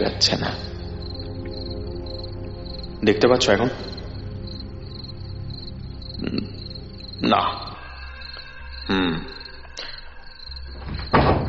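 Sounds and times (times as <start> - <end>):
speech: 0.1 - 0.7, 3.0 - 4.0, 7.2 - 7.7, 8.8 - 9.4
door being pushed shut with clunks and bumps: 10.7 - 11.4.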